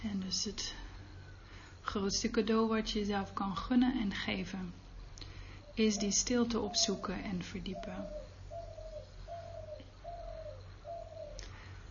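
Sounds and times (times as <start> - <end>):
speech: 0.0 - 0.9, 1.8 - 4.8, 5.8 - 8.3
ambience: 0.0 - 11.8
faint low hum: 0.0 - 11.8
dove cooing: 5.8 - 11.4.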